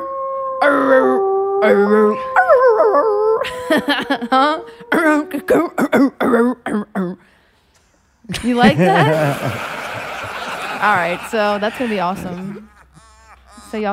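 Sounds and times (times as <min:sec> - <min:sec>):
voices imitating wolves howling, yipping and barking: 0:00.0 - 0:05.8
speech: 0:00.6 - 0:02.4, 0:03.4 - 0:07.4, 0:08.3 - 0:09.7, 0:10.8 - 0:12.7, 0:13.7 - 0:13.9
laughter: 0:03.4 - 0:05.3, 0:08.3 - 0:13.9.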